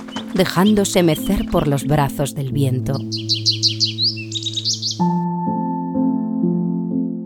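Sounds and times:
goldfinch singing bright twittering trills: 0:00.0 - 0:05.2
gentle melodic notes: 0:00.0 - 0:07.2
speech: 0:00.4 - 0:03.7.

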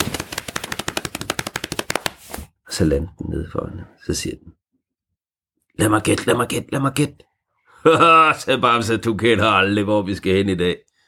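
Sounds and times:
blue tit wings flapping: 0:00.0 - 0:02.4
speech: 0:02.8 - 0:04.6, 0:05.8 - 0:10.8.

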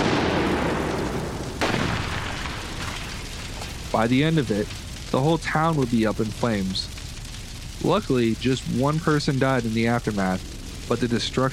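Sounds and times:
loud cannon blast with rumbling decay: 0:00.0 - 0:05.2
speech: 0:03.9 - 0:07.0, 0:07.8 - 0:11.5.

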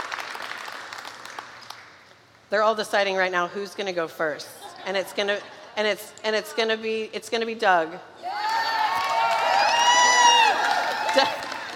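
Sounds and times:
speech: 0:02.5 - 0:08.2, 0:11.2 - 0:11.4
small group cheering and whooping: 0:08.2 - 0:11.7.

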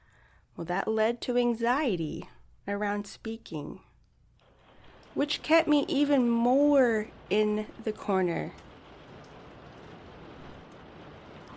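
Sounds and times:
speech: 0:00.6 - 0:03.9, 0:05.2 - 0:08.7
steady rain pouring outside: 0:04.4 - 0:11.5.

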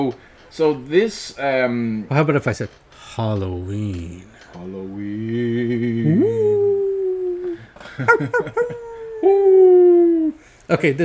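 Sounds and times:
speech: 0:00.0 - 0:06.9, 0:08.0 - 0:10.1, 0:10.7 - 0:11.0
person howling like a dog: 0:06.0 - 0:07.6, 0:08.6 - 0:10.4
laughter: 0:06.0 - 0:10.3.

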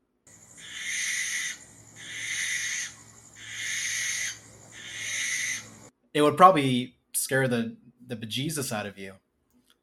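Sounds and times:
harsh hissing barn or eastern screech owl screeches: 0:00.6 - 0:05.8
speech: 0:06.2 - 0:09.2.

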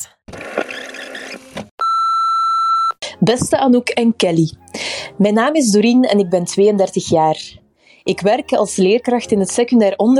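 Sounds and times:
answering machine long electronic beep: 0:01.8 - 0:03.0
speech: 0:03.2 - 0:10.1.

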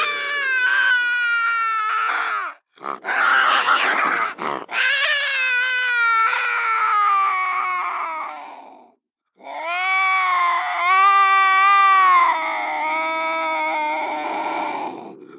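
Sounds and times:
bobcat caterwaul with long wailing yowls: 0:00.0 - 0:15.2
bobcat rough noisy growled bursts: 0:02.8 - 0:04.8, 0:13.7 - 0:15.3.

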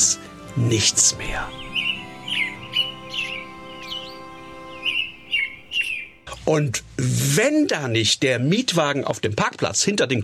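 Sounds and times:
birds chirping: 0:00.0 - 0:06.4
speech: 0:00.6 - 0:01.7, 0:06.5 - 0:10.2.

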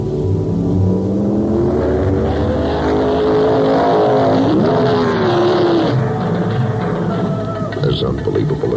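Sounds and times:
red 1972 Ferrari Dino 246 GT Pininfarina sports car engine being driven: 0:00.0 - 0:08.7.

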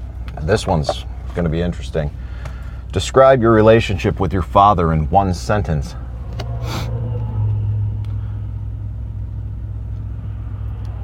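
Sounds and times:
low engine rumble: 0:00.0 - 0:11.0
speech: 0:00.4 - 0:02.2, 0:02.9 - 0:06.0
car passing on the road: 0:05.9 - 0:09.3.

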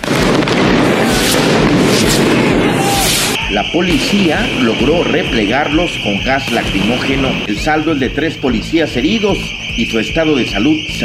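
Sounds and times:
constant roar of crowd noise: 0:00.0 - 0:07.5
rockets and molotov bombs thrown by protesters exploding: 0:00.0 - 0:11.0
people shouting: 0:00.1 - 0:07.5
speech: 0:03.5 - 0:11.0.

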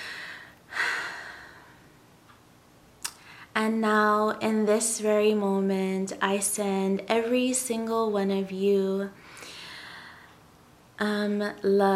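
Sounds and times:
deep breath: 0:00.0 - 0:01.9, 0:09.2 - 0:10.4
speech: 0:03.6 - 0:09.3, 0:11.0 - 0:11.9.

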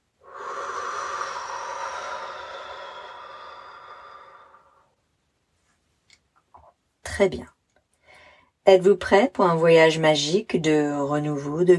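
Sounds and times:
long soft exhale during a guided breathing and visualization exercise: 0:00.2 - 0:05.0
speech: 0:07.2 - 0:07.6, 0:08.7 - 0:11.7.

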